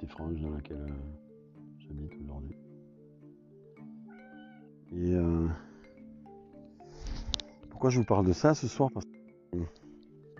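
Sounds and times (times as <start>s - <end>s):
speech: 0.2s - 1.3s, 1.9s - 2.7s, 7.8s - 9.8s
cat meowing in a drawn-out wavering yowl: 4.1s - 4.8s.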